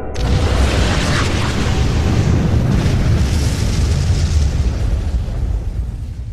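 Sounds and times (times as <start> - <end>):
planetoid exploding amid an alien fleet in a sci-fi space battle: 0.1 - 6.3.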